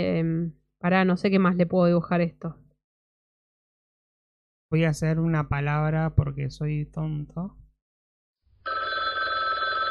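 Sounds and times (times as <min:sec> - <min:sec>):
speech: 0:00.0 - 0:02.6, 0:04.7 - 0:07.6
telephone ringing as a timer signal in a drawing game: 0:08.6 - 0:09.8.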